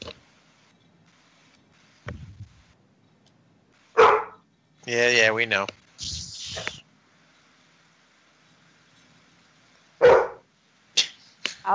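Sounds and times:
dog barking: 0:04.0 - 0:04.4, 0:10.0 - 0:10.4
speech: 0:04.8 - 0:06.2.

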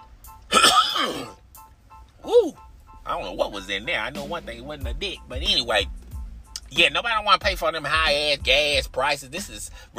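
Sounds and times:
person clearing throat forcefully: 0:00.5 - 0:01.4
speech: 0:03.1 - 0:06.0, 0:06.7 - 0:09.9.

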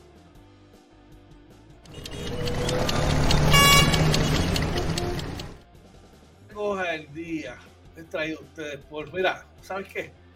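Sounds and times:
busy street traffic with engines rumbling: 0:01.8 - 0:05.7
car horn honking: 0:01.9 - 0:05.5
speech: 0:08.1 - 0:10.2.

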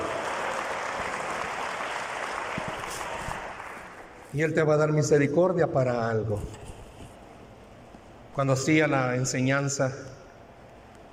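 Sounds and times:
church audience applauding: 0:00.0 - 0:04.2
speech: 0:04.3 - 0:06.6, 0:08.4 - 0:10.2.

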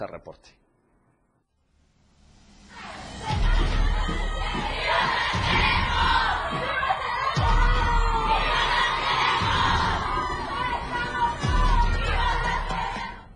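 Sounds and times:
speech: 0:00.0 - 0:00.6
women protesters chanting at a street march: 0:02.7 - 0:13.3.

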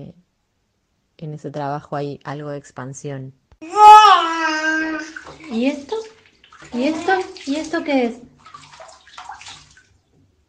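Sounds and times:
speech: 0:01.2 - 0:04.0, 0:04.8 - 0:06.0, 0:06.7 - 0:08.3
water running and splashing: 0:04.3 - 0:10.0.

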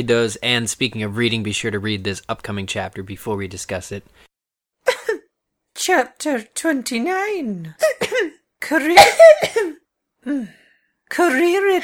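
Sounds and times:
speech: 0:00.0 - 0:04.3, 0:05.8 - 0:08.0, 0:08.6 - 0:11.8
person coughing: 0:04.9 - 0:05.3, 0:07.8 - 0:09.8.

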